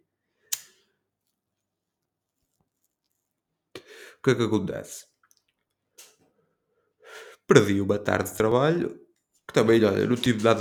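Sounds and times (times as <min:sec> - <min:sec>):
faint small clicks: 0:00.5 - 0:00.8, 0:05.2 - 0:06.3
lighter being flicked to light up: 0:00.5 - 0:00.8
speech: 0:04.2 - 0:05.1, 0:07.5 - 0:10.6.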